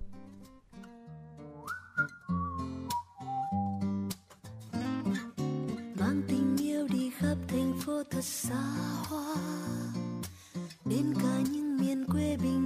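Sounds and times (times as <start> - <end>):
whistled melody line in a pop song: 1.4 - 4.3
listener-requested pop song intro on a Hanoi radio programme: 6.0 - 12.6
speech: 7.5 - 10.0, 10.9 - 11.6.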